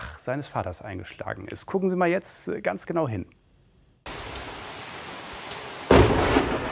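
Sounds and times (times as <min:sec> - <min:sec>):
speech: 0:00.2 - 0:03.4
crack of a nearby lightning strike: 0:04.1 - 0:06.6
dense roaring rumble of thunder: 0:04.1 - 0:06.6.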